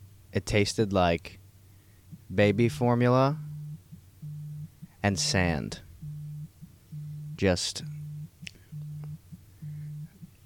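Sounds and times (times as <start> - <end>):
speech: 0.4 - 1.4, 2.3 - 3.5, 5.0 - 5.8, 7.4 - 8.0
phone ringing with a low buzzing tone: 3.4 - 5.3, 6.0 - 10.2.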